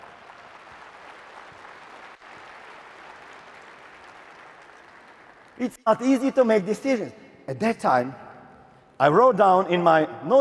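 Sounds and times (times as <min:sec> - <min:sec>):
audience applause: 0:00.0 - 0:05.6
speech: 0:05.6 - 0:08.2, 0:09.0 - 0:10.3.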